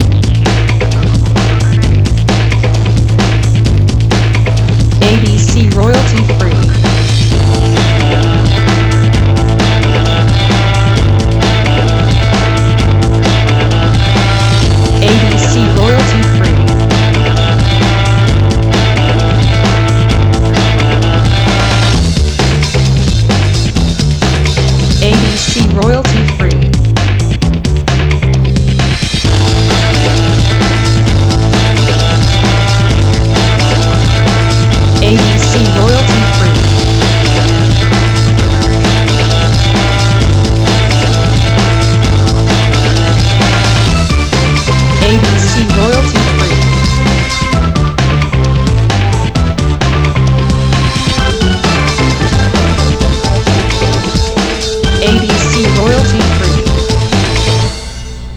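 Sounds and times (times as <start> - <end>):
lo-fi guitar breakbeat: 0.0 - 57.7.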